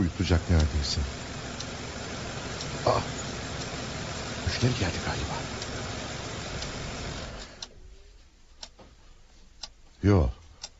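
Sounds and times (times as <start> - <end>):
vehicle rumble while pulling up outside: 0.0 - 7.6
speech: 0.1 - 1.2, 2.8 - 3.2, 4.5 - 5.6, 10.0 - 10.4
sharp clicks: 0.3 - 7.7.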